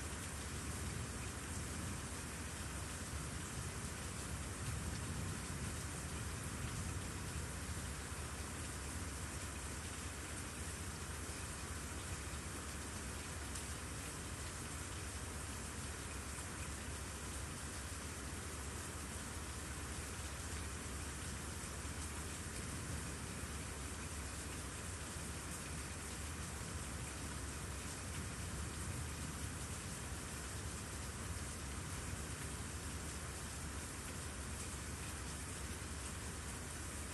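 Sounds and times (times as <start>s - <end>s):
rain falling at night: 0.0s - 37.1s.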